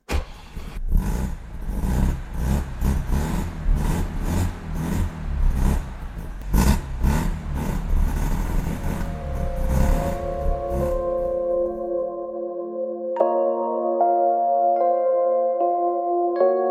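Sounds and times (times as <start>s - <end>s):
Wankel rotary engine of car revving: 0.0s - 11.4s
steady sustained musical tones: 8.4s - 16.6s.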